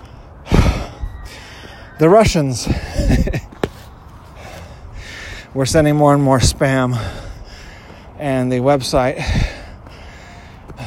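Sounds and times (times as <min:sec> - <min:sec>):
person breathing heavily while walking uphill with a dog: 0:00.0 - 0:01.9, 0:04.2 - 0:05.6, 0:06.8 - 0:08.2, 0:09.0 - 0:10.8
speech: 0:02.0 - 0:03.4, 0:05.6 - 0:07.2, 0:08.2 - 0:09.4.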